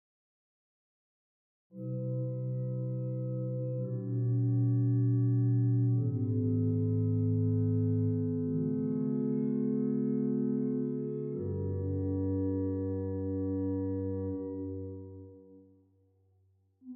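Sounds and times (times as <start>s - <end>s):
pipe organ cor de nuit stop on the Hauptwerk: 1.8s - 15.3s.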